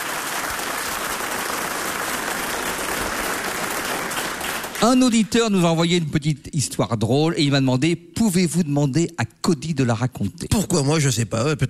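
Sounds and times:
audience applause for guests: 0.0 - 5.2
speech: 4.8 - 11.6.

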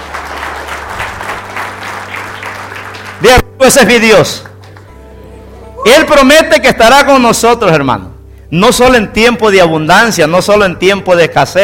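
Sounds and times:
audience applause at a church sermon: 0.0 - 3.4
speech: 3.2 - 4.5, 5.8 - 11.6.

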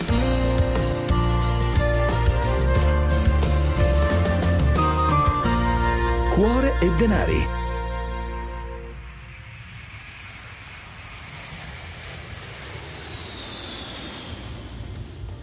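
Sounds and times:
airplane engine roaring as an aircraft takes off or lands: 0.2 - 15.4
speech: 6.4 - 7.6
faint rising jet whine: 7.6 - 15.4.

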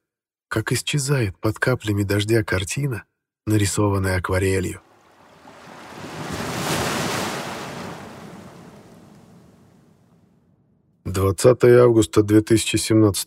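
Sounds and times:
speech: 0.5 - 4.9, 11.2 - 13.2
wind at sea on the Pacific Ocean: 4.7 - 10.8
open Pacific Ocean waves at sea: 4.8 - 10.6.

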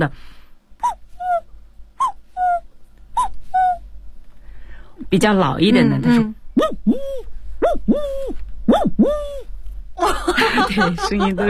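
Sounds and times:
speech: 0.0 - 1.0, 5.1 - 7.2, 10.0 - 11.4
human voice imitating cuckoo calls: 2.0 - 3.8, 6.6 - 9.5
laughter: 10.0 - 11.4.

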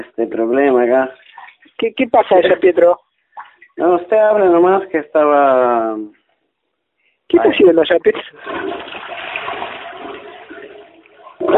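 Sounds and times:
speech: 0.0 - 1.2, 1.8 - 3.0, 3.8 - 6.2, 7.3 - 9.0
toilet cistern flushing: 8.2 - 11.5.

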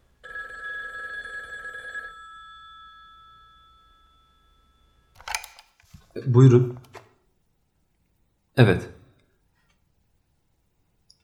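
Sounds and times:
telephone bell ringing: 0.2 - 5.2
speech: 6.2 - 6.8, 8.6 - 8.9.

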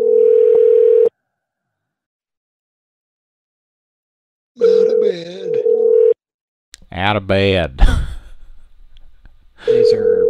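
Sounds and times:
ringback tone of an outgoing telephone call: 0.0 - 1.2, 4.6 - 6.2, 9.7 - 10.2
speech: 5.1 - 5.5, 7.0 - 8.0, 9.6 - 10.2.

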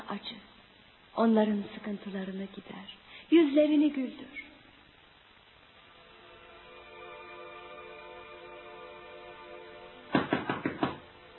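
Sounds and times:
steady hum: 0.0 - 11.3
speech: 1.2 - 4.4
knocking on a door: 10.2 - 11.1.

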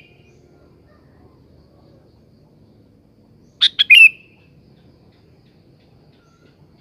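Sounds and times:
sooty-headed bulbul bubbling song phrases: 3.6 - 4.3.

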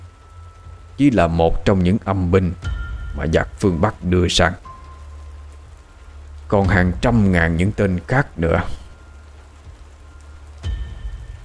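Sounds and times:
rain growing heavier: 0.0 - 11.4
speech: 1.0 - 4.6, 6.5 - 8.8.

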